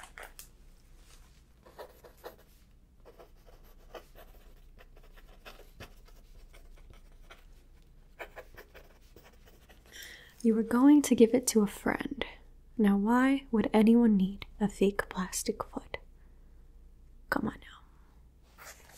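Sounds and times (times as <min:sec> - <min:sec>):
soft steady hiss: 0:00.0 - 0:18.9
pen scratching on paper: 0:01.6 - 0:09.9
speech: 0:10.4 - 0:12.2, 0:12.8 - 0:15.8.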